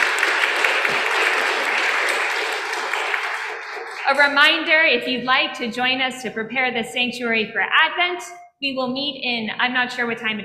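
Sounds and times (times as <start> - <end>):
church audience applause: 0.0 - 4.6
speech: 4.1 - 10.4.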